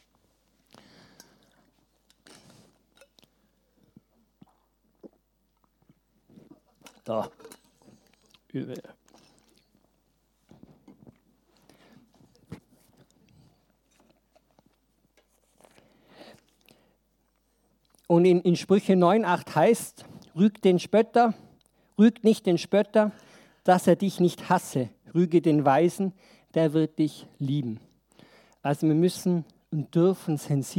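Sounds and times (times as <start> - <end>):
person taking a sip of water: 0.6 - 18.0
speech: 7.1 - 7.6, 8.5 - 8.8, 18.2 - 21.4, 22.0 - 27.9, 28.6 - 30.7.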